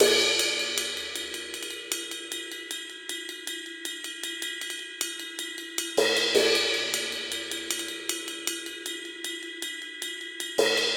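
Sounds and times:
straight reggae cymbals: 0.0s - 10.9s.

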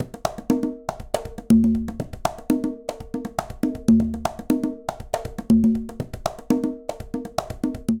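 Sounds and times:
conga tumba playing jazz funk Latin percussion: 0.0s - 7.9s.

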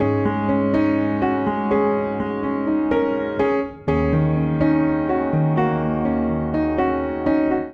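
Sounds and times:
suspenseful upright piano phrase in Ab minor at 124 bpm: 0.0s - 7.7s.

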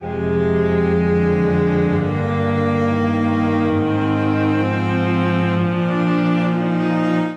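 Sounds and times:
string quartet playing F minor chord progression: 0.0s - 7.3s.

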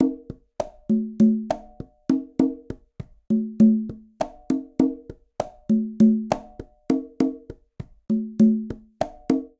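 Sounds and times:
bossa nova conga tumba rhythm in Latin percussion: 0.0s - 9.5s.

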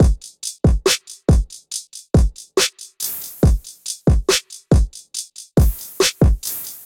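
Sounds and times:
trap drum kit beat: 0.0s - 6.8s.

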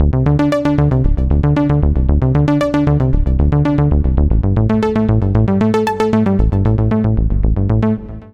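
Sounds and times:
synth bass loop in D at 115 bpm: 0.0s - 8.3s.

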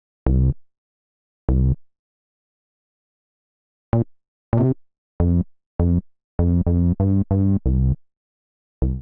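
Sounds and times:
C minor bassline at 85 bpm: 0.2s - 0.6s, 1.5s - 1.8s, 3.9s - 8.0s, 8.8s - 9.0s.

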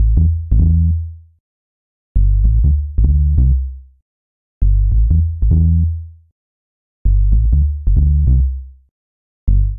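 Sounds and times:
dirty sub bass line in A minor at 93 bpm: 0.0s - 1.2s, 2.2s - 3.8s, 4.6s - 6.1s, 7.1s - 8.7s, 9.5s - 9.7s.

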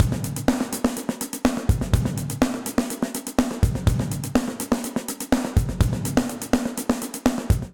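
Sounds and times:
snare drum with dark plate reverb: 0.0s - 7.7s.

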